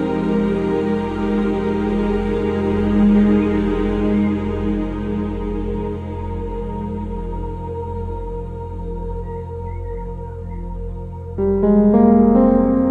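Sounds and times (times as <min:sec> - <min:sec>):
piano chords: 0:00.0 - 0:05.9, 0:11.2 - 0:12.8
faint bird chirps: 0:09.1 - 0:11.9.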